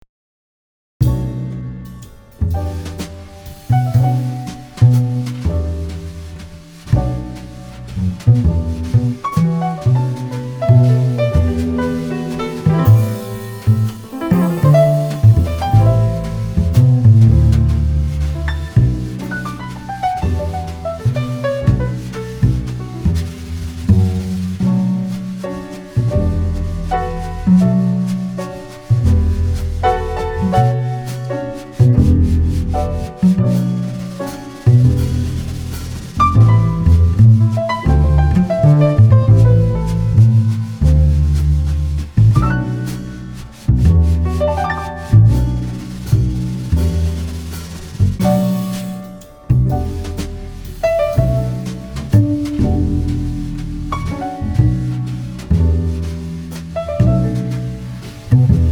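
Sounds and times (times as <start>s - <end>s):
smooth mellow jazz piano trio: 1.0s - 58.7s.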